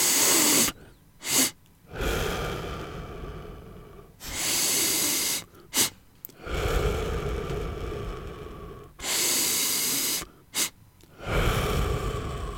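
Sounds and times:
long steady audible exhale through the mouth: 0.0s - 12.5s
two quick sniffing inhales through the nose: 0.0s - 12.5s.

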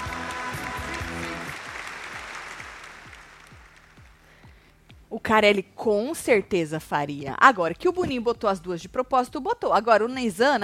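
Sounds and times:
crowd applauding: 0.0s - 4.4s
speech: 5.2s - 10.6s.

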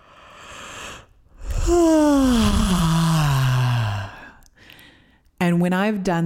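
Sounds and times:
person yawning as a yoga voice warm-up stretch: 0.6s - 4.5s
speech: 1.7s - 2.4s, 5.6s - 6.2s.

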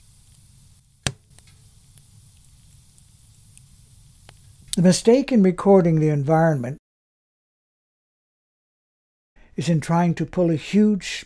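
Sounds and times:
fire crackling: 0.0s - 5.2s
speech: 4.8s - 6.8s, 9.6s - 11.2s.

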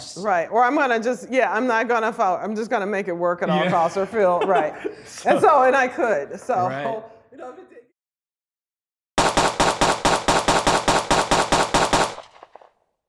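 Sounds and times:
speech: 0.2s - 7.8s
laughter: 3.5s - 5.9s
rapid volley of loud gunshots: 9.2s - 12.8s.

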